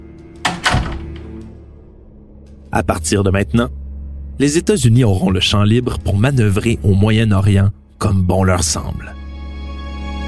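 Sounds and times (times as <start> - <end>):
conference room door swinging shut with a scrape: 0.4 - 1.4
speech: 2.8 - 3.8, 4.4 - 9.2.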